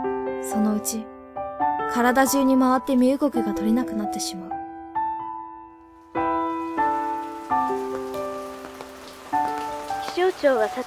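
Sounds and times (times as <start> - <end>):
soft sustained piano-like chords: 0.0 - 10.8
speech: 0.4 - 1.1, 1.9 - 4.6, 10.4 - 10.8
rainy-season rain pattering: 5.7 - 10.8.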